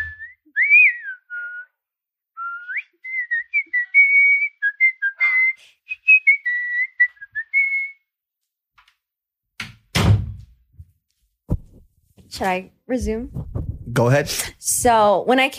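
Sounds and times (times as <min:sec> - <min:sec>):
person whistling a short melody: 0:00.0 - 0:01.8, 0:02.4 - 0:08.1
door opened and shut to let a guest in: 0:09.6 - 0:10.6
speech: 0:12.4 - 0:15.5.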